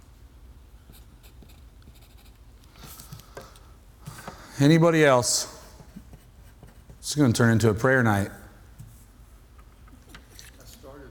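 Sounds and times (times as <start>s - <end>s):
pen or marker scratching on a surface: 0.9s - 2.4s
speech: 4.6s - 5.6s, 7.1s - 8.4s.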